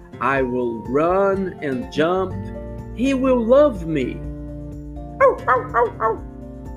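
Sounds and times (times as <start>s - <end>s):
speech: 0.2s - 4.3s, 5.4s - 6.3s
person imitating a dog barking: 5.2s - 6.3s.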